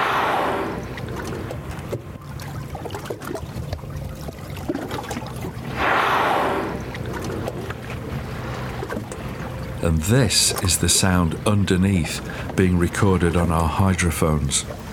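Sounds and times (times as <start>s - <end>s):
whale exhaling through its two enormous blowholes: 0.0s - 1.6s, 5.6s - 7.5s
steady low wash of water: 0.0s - 14.9s
speech: 9.9s - 14.9s.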